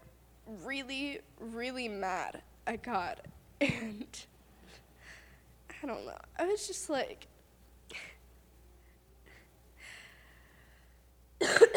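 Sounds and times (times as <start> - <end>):
speech: 0.5 - 4.3, 5.8 - 7.3, 7.9 - 8.1
coughing: 3.6 - 4.8, 11.4 - 11.7.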